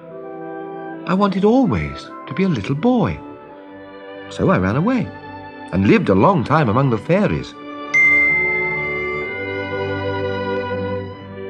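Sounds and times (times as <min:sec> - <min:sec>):
speech: 0:01.1 - 0:03.3, 0:04.3 - 0:07.6
small bells tinkling: 0:08.0 - 0:10.3.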